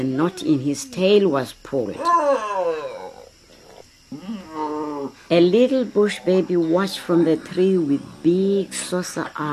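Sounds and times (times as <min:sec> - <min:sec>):
speech: 0:00.0 - 0:02.9, 0:04.1 - 0:09.5
lion roaring angrily with a rough growling snarl: 0:02.0 - 0:05.1.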